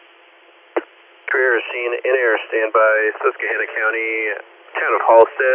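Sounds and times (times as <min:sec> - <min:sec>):
radio hiss: 0:01.3 - 0:05.5
speech: 0:02.1 - 0:05.5.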